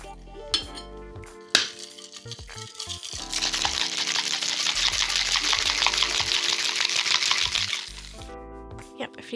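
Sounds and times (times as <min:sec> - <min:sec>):
ice rattling in a cocktail shaker shaking an egg white drink: 0:01.4 - 0:08.2
speech: 0:02.2 - 0:03.6.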